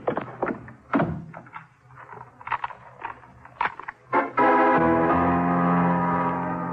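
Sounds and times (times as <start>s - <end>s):
sharp knocks and thumps: 0.0s - 4.0s
loud sustained droning tone: 3.6s - 6.7s.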